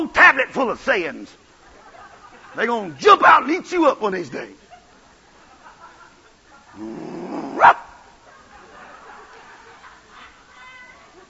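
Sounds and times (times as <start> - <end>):
speech: 0.0 - 1.4, 2.6 - 4.6, 6.8 - 7.8
laughter: 1.6 - 3.0, 4.3 - 7.5, 8.2 - 11.2
person growling like an animal: 6.8 - 7.8.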